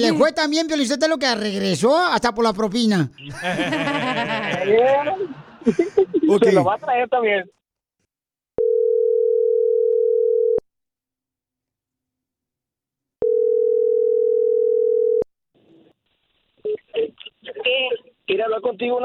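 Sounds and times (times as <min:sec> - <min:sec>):
speech: 0:00.0 - 0:07.6, 0:16.6 - 0:19.0
laughter: 0:03.2 - 0:07.0
telephone line tone of an incoming call: 0:08.6 - 0:10.6, 0:13.2 - 0:15.2.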